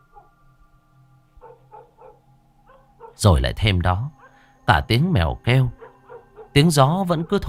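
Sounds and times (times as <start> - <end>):
dogs barking in a village at night: 1.4 - 3.3, 4.1 - 4.5, 5.7 - 7.4
speech: 3.2 - 5.8, 6.6 - 7.4.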